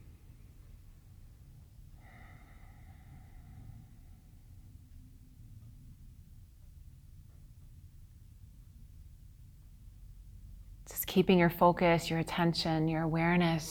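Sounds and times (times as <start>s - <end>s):
slow quiet breathing through the nostrils: 2.0s - 4.5s
speech: 10.9s - 13.6s.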